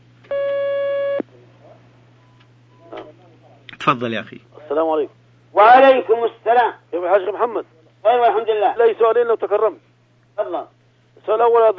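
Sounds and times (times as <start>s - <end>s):
telephone line tone as a call is taken: 0.3s - 1.2s
speech: 3.9s - 11.7s.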